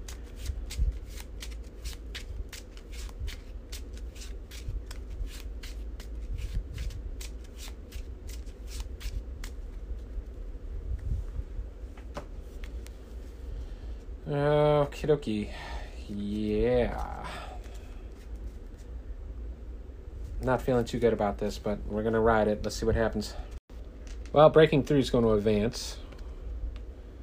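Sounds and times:
playing cards being shuffled into a deck: 0:00.0 - 0:10.1, 0:12.0 - 0:13.0, 0:16.1 - 0:18.9
speech: 0:14.3 - 0:17.2, 0:20.4 - 0:23.5, 0:24.4 - 0:26.0.

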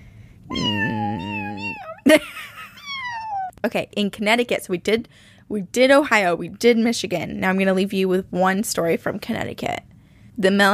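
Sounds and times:
cat meowing: 0:00.5 - 0:02.0, 0:02.8 - 0:03.5
speech: 0:03.6 - 0:10.7.

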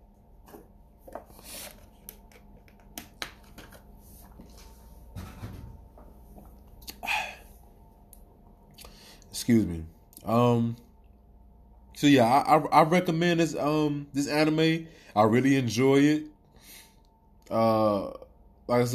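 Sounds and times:
person sipping water with wet mouth clicks: 0:06.8 - 0:07.5
speech: 0:09.5 - 0:10.8, 0:12.0 - 0:16.3, 0:17.5 - 0:18.9.

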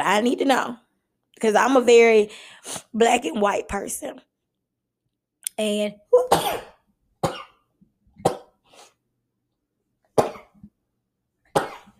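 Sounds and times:
speech: 0:00.1 - 0:00.8, 0:01.4 - 0:04.3, 0:05.6 - 0:06.7
person sneezing from allergies: 0:06.2 - 0:06.8.

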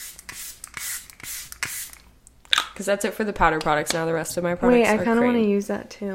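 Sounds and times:
makeup setting spray misted onto a face: 0:00.0 - 0:02.1
speech: 0:02.8 - 0:06.1.

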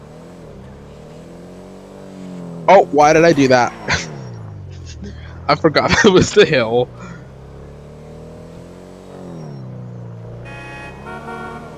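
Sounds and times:
car engine droning: 0:00.0 - 0:11.7
speech: 0:02.7 - 0:03.8, 0:05.0 - 0:07.0
car horns honking: 0:10.3 - 0:11.7.

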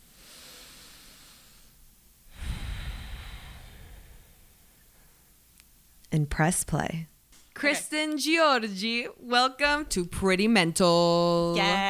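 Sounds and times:
slow deep human breath: 0:00.0 - 0:05.4
speech: 0:06.1 - 0:11.8.

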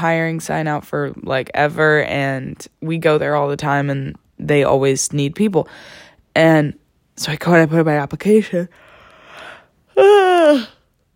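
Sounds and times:
speech: 0:00.0 - 0:08.8, 0:10.0 - 0:10.8
breathy inhale: 0:05.7 - 0:06.2, 0:08.7 - 0:09.8
loud drawn-out voiced yawn: 0:10.0 - 0:10.8.

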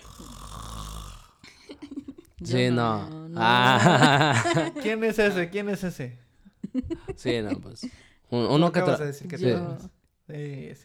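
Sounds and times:
person snoring: 0:00.0 - 0:01.6
laughter: 0:01.4 - 0:02.7, 0:03.4 - 0:05.6, 0:06.6 - 0:08.0
speech: 0:02.4 - 0:06.2, 0:07.2 - 0:10.8.

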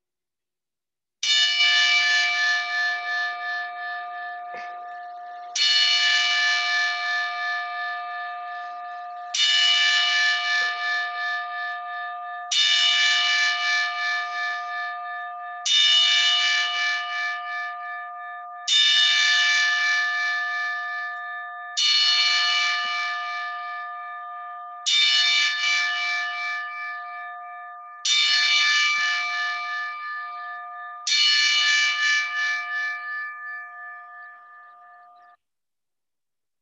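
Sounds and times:
single loud bell tolling played from a phone: 0:01.3 - 0:35.4.

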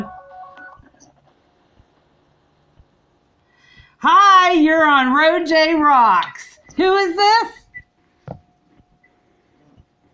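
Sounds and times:
electronic phone tones: 0:00.0 - 0:00.9
speech: 0:04.0 - 0:07.6.

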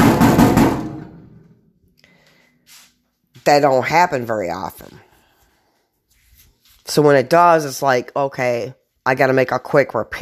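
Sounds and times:
knocking on a microwave: 0:00.0 - 0:01.1
speech: 0:03.4 - 0:05.1, 0:06.9 - 0:10.2.

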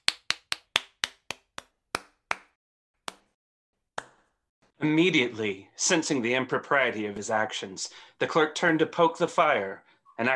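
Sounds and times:
one person clapping hands: 0:00.0 - 0:03.3
speech: 0:04.8 - 0:10.3.

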